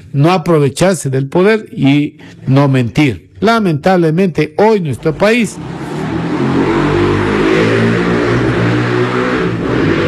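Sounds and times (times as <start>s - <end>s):
speech: 0.1s - 5.9s
motorcycles with open unmuffled exhausts revving in a city: 5.5s - 10.0s.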